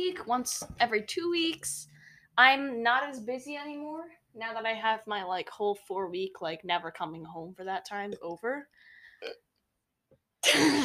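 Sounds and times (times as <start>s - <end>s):
speech: 0.0s - 9.4s, 10.4s - 10.8s
short guttural burp: 9.2s - 9.5s.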